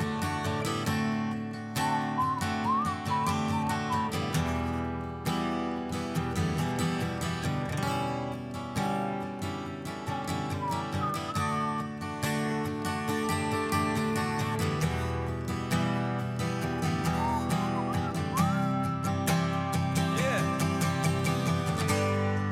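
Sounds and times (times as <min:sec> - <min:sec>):
full instrumental backing music: 0:00.0 - 0:22.4
person whistling a slow wavering melody: 0:01.7 - 0:04.8, 0:10.1 - 0:12.4, 0:16.8 - 0:20.6.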